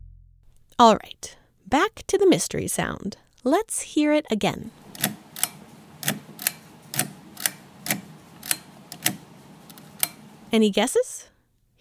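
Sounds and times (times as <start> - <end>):
speech: 0.8 - 5.1, 10.5 - 11.3
lamp switch clicking on and off: 4.8 - 10.3.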